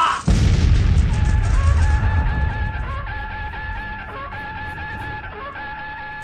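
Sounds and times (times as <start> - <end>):
explosion of grenades strapped to charging attackers: 0.2 - 3.0.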